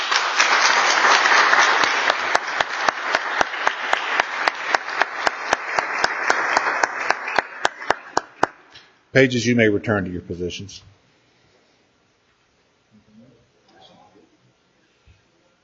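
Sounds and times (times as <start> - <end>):
room full of people applauding: 0.0 - 8.7
sharp rhythmic unison claps: 0.0 - 9.0
speech: 9.2 - 11.0.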